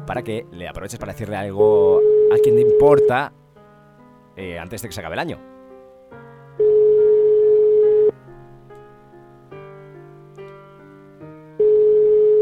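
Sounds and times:
speech: 0.1 - 3.4, 4.4 - 5.5
phone line electronic ring tones as a radio show calls a listener: 2.0 - 3.1, 6.6 - 8.1, 11.6 - 12.3.

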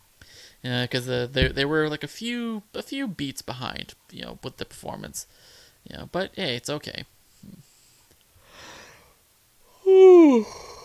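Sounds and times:
speech: 0.6 - 7.6, 9.9 - 10.7
person yawning: 9.8 - 10.8.

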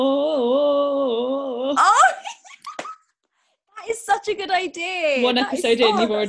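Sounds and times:
person wailing a held note into a microphone: 0.0 - 2.4
speech: 4.2 - 6.2.

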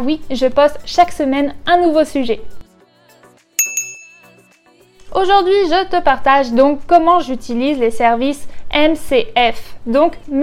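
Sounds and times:
speech: 0.0 - 2.6, 5.2 - 10.4
notification bell ding sound effect: 3.6 - 4.5.

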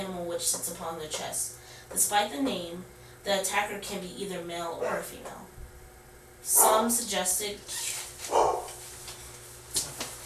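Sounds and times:
low steady hum: 0.0 - 10.2
speech: 0.4 - 5.5, 6.4 - 8.6
dog barking and yipping: 4.8 - 5.1, 6.5 - 6.9, 8.3 - 8.8.

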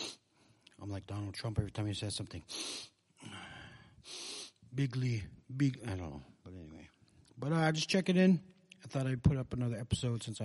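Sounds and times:
airy hiss of breath: 0.0 - 0.2, 2.5 - 4.6
congested nasal sniff from a sick person: 0.0 - 0.3, 2.4 - 4.6
speech: 0.8 - 2.9, 4.7 - 10.4.

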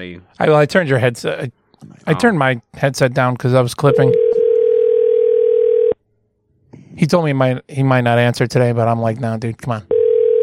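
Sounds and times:
speech: 0.0 - 4.3, 7.0 - 9.9
loud steady telephone dial tone: 4.1 - 6.0, 9.9 - 10.4.

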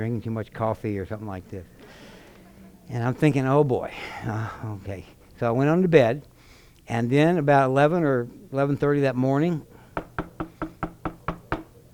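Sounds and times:
speech: 0.0 - 2.0, 2.9 - 6.3, 6.9 - 9.7
knocking on a door: 10.0 - 11.7.

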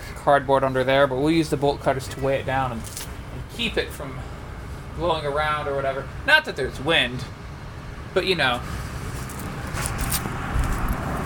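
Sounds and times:
speech: 0.2 - 3.0, 3.6 - 4.4, 5.0 - 7.4, 8.2 - 8.8
flatbed utility truck passing by: 2.4 - 11.2.

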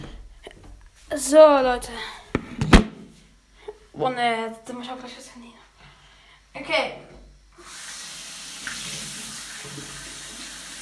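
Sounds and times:
speech: 1.2 - 2.2, 4.0 - 5.6, 6.6 - 7.1
water running from a tap while washing out a part: 7.6 - 10.8.

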